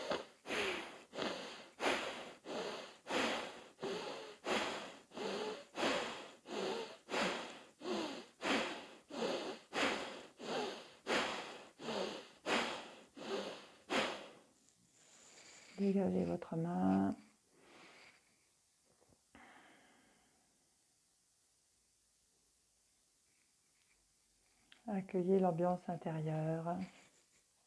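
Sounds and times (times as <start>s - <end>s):
rhythmic nasal breathing during a yoga alternate-nostril exercise: 0.0s - 16.2s, 16.8s - 18.6s, 19.3s - 20.4s
speech: 15.8s - 17.2s, 25.1s - 27.0s.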